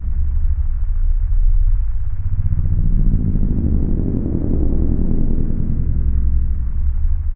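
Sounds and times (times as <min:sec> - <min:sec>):
ambient drone loop for video games: 0:00.0 - 0:07.3.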